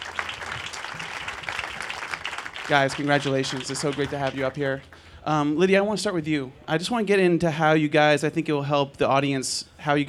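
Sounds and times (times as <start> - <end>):
crowd clapping: 0.0 - 5.1
speech: 2.7 - 10.0.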